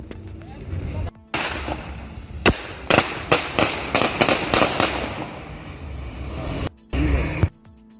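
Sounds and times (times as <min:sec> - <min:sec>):
noisy outdoor background: 0:00.0 - 0:07.9
gunshots fired at a drunk-driving checkpoint in Brazil: 0:01.3 - 0:05.4.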